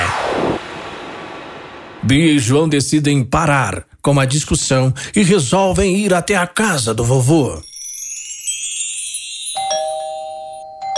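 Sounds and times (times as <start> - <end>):
speech: 2.0 - 7.7
electronic doorbell chiming: 7.6 - 10.9.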